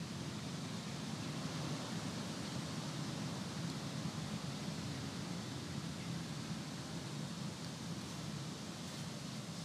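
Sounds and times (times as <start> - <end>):
outdoor ambience: 0.0 - 9.6.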